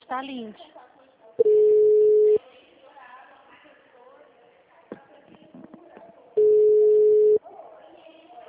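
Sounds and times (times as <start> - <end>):
faint voices: 0.5 - 8.4
telephone ringback tone while calling a client: 1.4 - 2.4, 6.4 - 7.4.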